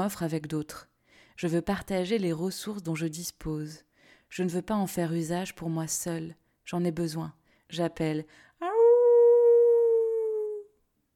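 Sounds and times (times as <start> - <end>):
speech: 0.0 - 8.5
long howl with steady clear tone: 8.6 - 10.7.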